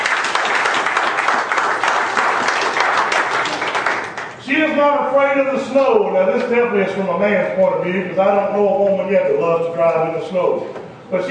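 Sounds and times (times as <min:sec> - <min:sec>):
crowd applauding: 0:00.0 - 0:04.4
speech: 0:04.8 - 0:11.2.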